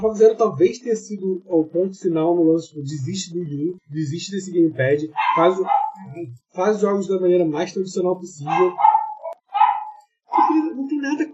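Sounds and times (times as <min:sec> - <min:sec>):
speech: 0:00.0 - 0:08.9, 0:10.6 - 0:11.3
dog barking at home: 0:05.2 - 0:06.1, 0:08.5 - 0:10.8.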